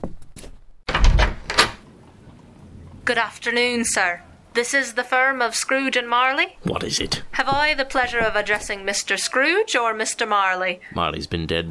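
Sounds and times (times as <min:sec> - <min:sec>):
door rattling thud and creak as it swings open: 0:00.8 - 0:01.8, 0:07.1 - 0:09.0
door latch clicks: 0:00.9 - 0:01.8
speech: 0:03.1 - 0:11.6.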